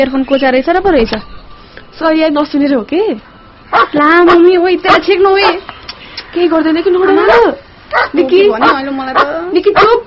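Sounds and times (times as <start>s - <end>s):
speech: 0.0s - 10.0s
dog barking: 3.7s - 5.6s, 7.2s - 10.0s.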